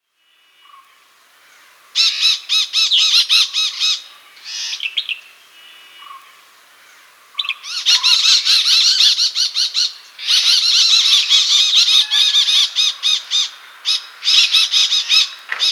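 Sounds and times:
Malabar parakeet calling: 2.0s - 5.2s, 7.4s - 15.7s.

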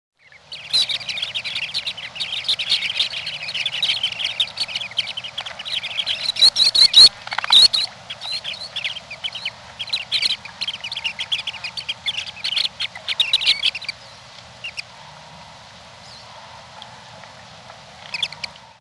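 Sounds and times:
western sandpiper calling: 0.2s - 18.7s.

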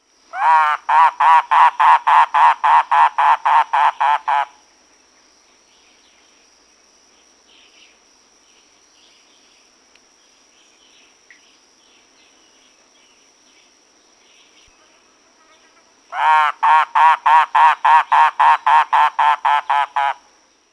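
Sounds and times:
mangrove cuckoo calling: 0.4s - 4.5s, 16.2s - 20.2s.

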